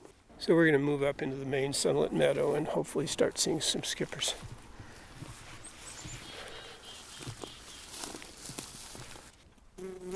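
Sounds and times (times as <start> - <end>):
speech: 0.4 - 4.6
footsteps crunching through vegetation in a sunlit meadow: 2.1 - 9.5
faint birdsong in a sunlit meadow: 4.1 - 8.5
bumblebee buzzing on a pink Monarda flower: 9.8 - 10.1.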